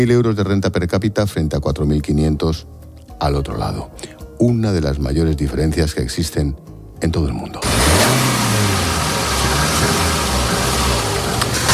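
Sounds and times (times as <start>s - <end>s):
speech: 0.0s - 8.3s
car engine running along the border fence in Melilla: 7.6s - 11.7s
road noise: 7.6s - 11.7s.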